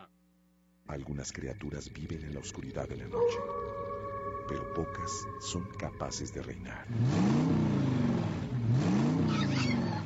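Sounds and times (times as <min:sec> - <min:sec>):
speech: 0:00.9 - 0:03.9, 0:04.5 - 0:07.9, 0:08.7 - 0:09.5
Chevrolet Cheyenne Midnight Edition pickup truck engine revving: 0:03.2 - 0:10.0.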